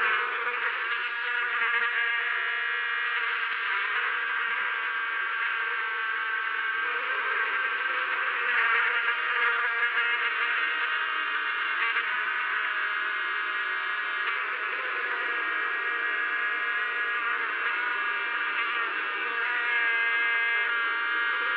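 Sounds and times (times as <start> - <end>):
insects buzzing: 0.0 - 21.5.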